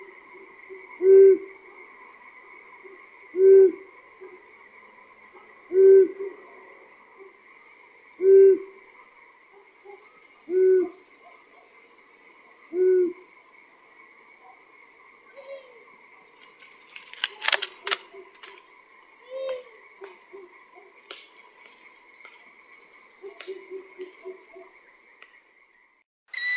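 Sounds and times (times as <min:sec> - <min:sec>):
long-eared owl giving deep even hoots: 0:00.0 - 0:04.5, 0:05.3 - 0:06.4, 0:08.2 - 0:08.9, 0:09.5 - 0:11.6, 0:12.5 - 0:13.4, 0:15.3 - 0:16.0, 0:19.2 - 0:20.9, 0:23.2 - 0:24.7, 0:26.3 - 0:26.5.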